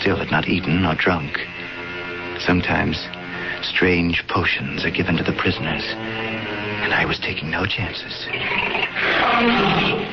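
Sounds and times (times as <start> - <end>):
speech: 0.0 - 1.6, 2.4 - 10.1
starved lion roaring in a cage beneath an amphitheater: 8.2 - 10.1.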